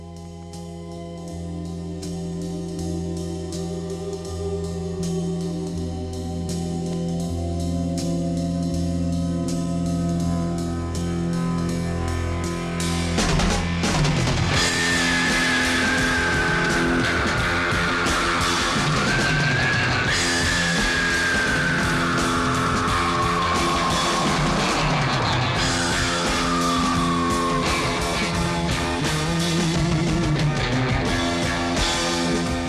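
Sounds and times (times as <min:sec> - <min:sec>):
loud dense rock music from a film soundtrack: 0:00.0 - 0:32.6
high wailing screaming line sliding up and down: 0:14.6 - 0:28.8.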